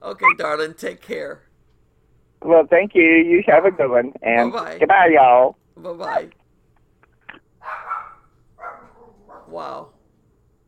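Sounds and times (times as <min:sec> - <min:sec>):
faint hum: 0:00.0 - 0:10.6
speech: 0:00.1 - 0:01.5, 0:02.4 - 0:06.4, 0:09.5 - 0:09.9
dogs barking: 0:07.6 - 0:09.6.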